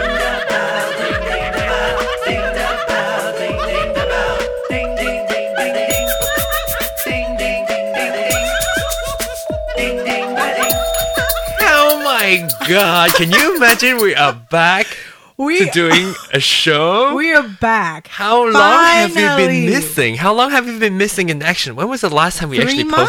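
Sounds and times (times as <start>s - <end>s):
laughter and chuckling: 0.0s - 5.4s, 9.7s - 10.7s, 11.3s - 14.5s, 15.5s - 16.3s
bell ringing: 5.9s - 14.2s
speech: 12.4s - 23.0s.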